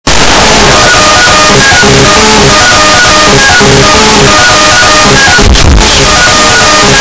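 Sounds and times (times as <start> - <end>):
loud phonk beat: 0.0 - 7.0.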